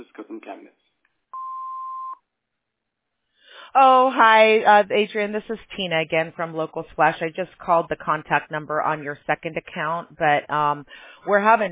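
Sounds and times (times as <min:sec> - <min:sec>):
speech: 0:00.1 - 0:00.8, 0:03.7 - 0:11.6
voicemail beep: 0:01.4 - 0:02.2.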